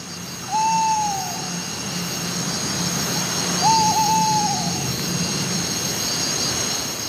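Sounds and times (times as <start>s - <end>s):
steady low droning noise: 0.0s - 7.0s
owl hooting: 0.4s - 1.7s, 3.4s - 5.2s.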